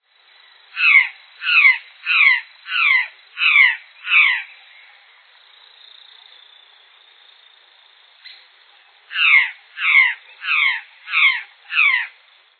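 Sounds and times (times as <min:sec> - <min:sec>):
curl-crested jay calling: 0:00.8 - 0:04.5, 0:09.1 - 0:12.2.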